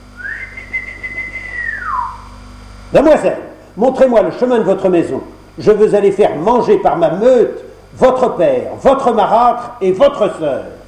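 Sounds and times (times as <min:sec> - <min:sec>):
faint hum: 0:00.0 - 0:10.8
long human whistle calling greyhounds: 0:00.1 - 0:02.3
speech: 0:02.9 - 0:10.8.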